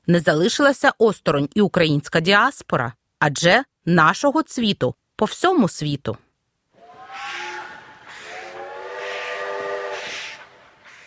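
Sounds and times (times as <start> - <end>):
speech: 0.1 - 6.2
hiss and rumble of a train at the railway station in Kraków: 6.8 - 11.0
steam locomotive whistle: 6.8 - 11.0.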